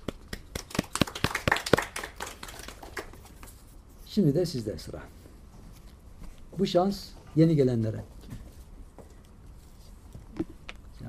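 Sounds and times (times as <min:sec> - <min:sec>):
small group of hands clapping: 0:00.0 - 0:03.6
speech: 0:04.2 - 0:05.2, 0:06.6 - 0:08.2.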